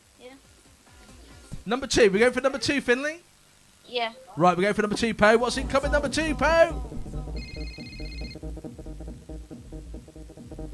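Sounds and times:
busy rhythmic low sound: 0.0s - 10.7s
speech: 1.6s - 3.3s, 3.9s - 7.0s
telephone ringing with an electronic trill: 7.4s - 8.4s.

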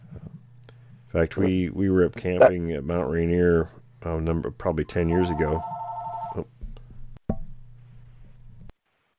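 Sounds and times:
low hum: 0.0s - 8.8s
speech: 1.1s - 6.5s
short electronic telephone ring: 5.1s - 6.4s.

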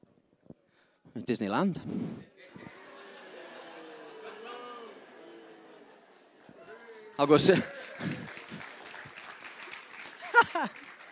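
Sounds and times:
speech: 1.2s - 2.3s, 7.2s - 8.4s
crowd applauding: 2.8s - 11.1s
burst of laughter: 2.9s - 5.8s, 10.2s - 10.8s.

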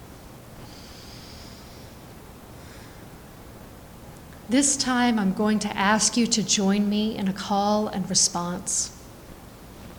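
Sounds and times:
faint steady hiss: 0.0s - 9.9s
deep breathing during guided meditation: 0.6s - 3.3s
speech: 4.5s - 9.0s.

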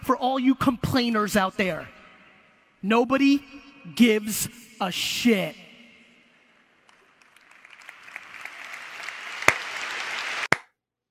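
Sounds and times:
speech: 0.1s - 2.0s, 2.8s - 5.6s
stadium crowd applauding: 6.8s - 10.6s.

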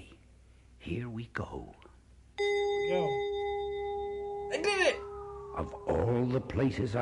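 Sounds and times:
speech: 0.9s - 1.8s, 2.4s - 3.3s, 5.6s - 6.9s
bright electronic page-turn chime: 2.4s - 6.9s.

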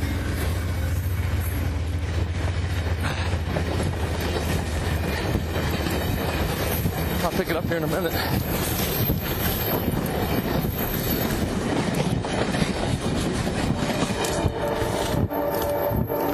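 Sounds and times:
train rolling past on the rails: 0.0s - 16.3s
speech: 7.4s - 8.9s.

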